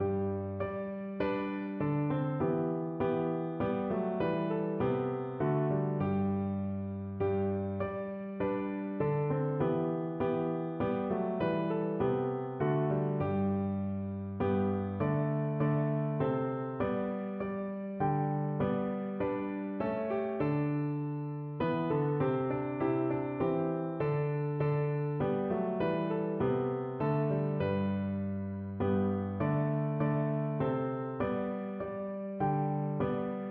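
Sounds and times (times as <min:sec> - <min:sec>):
Christmas hymn on piano: 0:00.0 - 0:33.4.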